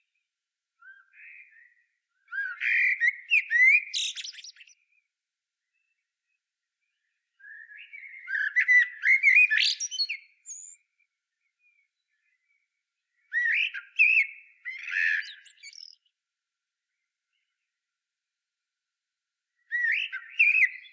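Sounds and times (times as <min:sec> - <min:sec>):
common blackbird Turdus merula singing fluty whistled phrases: 0:00.8 - 0:04.8, 0:07.0 - 0:10.9, 0:13.3 - 0:16.1, 0:19.7 - 0:20.9.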